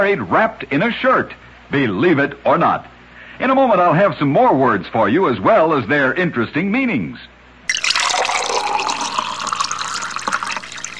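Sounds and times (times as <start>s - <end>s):
speech: 0.0s - 7.3s
drinking water pouring into a glass: 7.7s - 10.9s.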